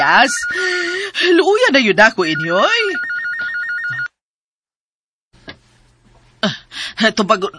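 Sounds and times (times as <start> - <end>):
telephone ringing with electronic trill: 0.0 - 1.0, 2.2 - 4.2
speech: 0.0 - 3.0, 6.4 - 7.5.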